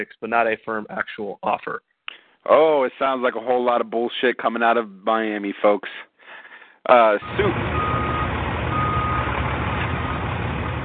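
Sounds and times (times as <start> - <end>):
speech: 0.0 - 6.1, 6.8 - 8.0
reversing truck backup alarm beeping: 7.2 - 9.3
continuous dense rumble of truck engine noise: 7.2 - 10.8.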